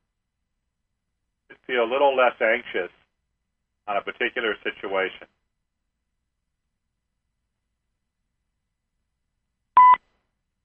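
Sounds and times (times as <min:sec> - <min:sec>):
speech: 0:01.7 - 0:03.0, 0:03.9 - 0:05.4
telephone keypad tone on a phone line: 0:09.8 - 0:10.0.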